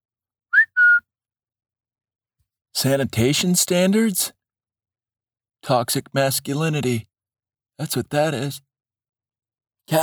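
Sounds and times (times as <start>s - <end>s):
two-note wolf-whistle style sound effect: 0.5s - 1.1s
speech: 2.8s - 4.4s, 5.6s - 7.1s, 7.8s - 8.7s.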